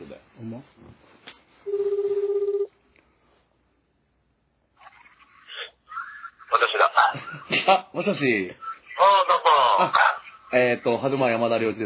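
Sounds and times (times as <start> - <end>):
speech: 0.4 - 0.8, 7.7 - 11.8
ringback tone of an outgoing telephone call: 1.7 - 2.7.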